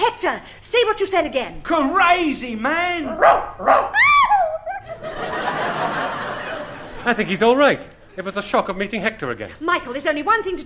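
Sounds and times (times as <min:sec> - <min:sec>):
speech: 0:00.0 - 0:04.2, 0:07.0 - 0:10.6
dog yelping barks: 0:03.1 - 0:04.8
laughter: 0:04.4 - 0:07.6.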